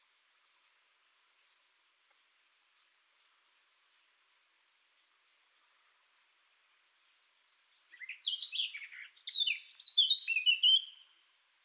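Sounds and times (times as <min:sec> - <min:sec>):
Eurasian blackcap Sylvia atricapilla warbling song: 0:08.0 - 0:10.9.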